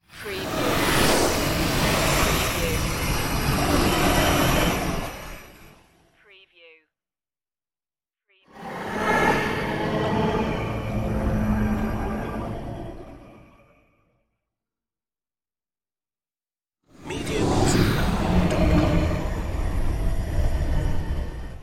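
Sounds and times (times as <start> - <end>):
starship platoon flybys: 0.2 - 5.7, 8.6 - 13.9, 17.0 - 21.6.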